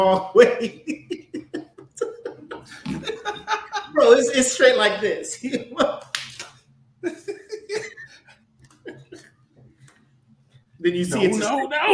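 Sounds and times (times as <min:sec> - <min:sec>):
speech: 0:00.0 - 0:01.2, 0:04.0 - 0:06.1, 0:10.8 - 0:11.9
person laughing: 0:00.0 - 0:04.6, 0:07.0 - 0:09.3
hand slapping own neck at a bug: 0:06.0 - 0:06.6.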